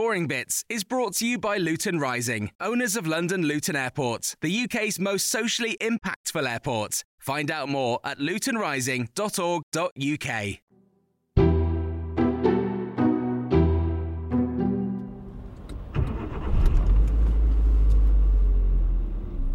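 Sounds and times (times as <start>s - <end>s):
speech: 0.0s - 10.6s
bright musical notes: 11.4s - 15.4s
car driving through town centre: 15.0s - 19.5s.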